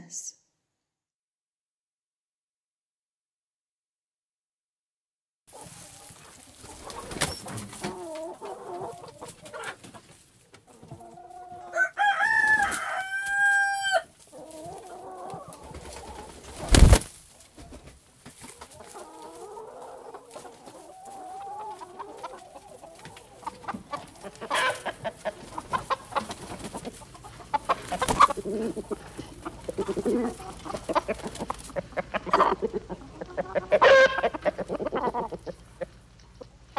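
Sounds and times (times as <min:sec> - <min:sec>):
chickens clucking: 0:05.5 - 0:36.7
wings fluttering: 0:05.7 - 0:08.0, 0:15.5 - 0:18.8, 0:27.7 - 0:28.4.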